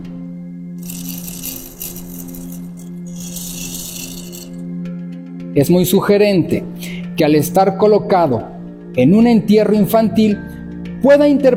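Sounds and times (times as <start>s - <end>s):
hollow clay sculpture with clay pellets shaken as a rattle: 0.8s - 4.6s
speech: 5.6s - 11.5s.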